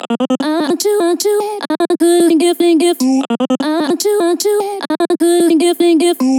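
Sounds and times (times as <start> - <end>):
vocal chop loop in F: 0.0 - 6.3.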